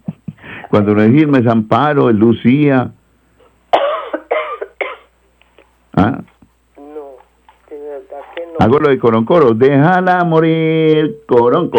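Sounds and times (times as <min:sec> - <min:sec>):
speech: 0:00.7 - 0:03.0, 0:08.7 - 0:11.7
harsh coughs: 0:03.7 - 0:05.2.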